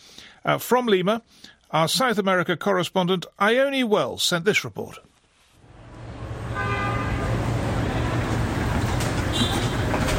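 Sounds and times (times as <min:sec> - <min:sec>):
speech: 0:00.4 - 0:05.1
dense city traffic roaring in Lima Peru: 0:05.6 - 0:10.1
car horns honking in Lima Peru: 0:06.4 - 0:08.3, 0:09.2 - 0:10.1.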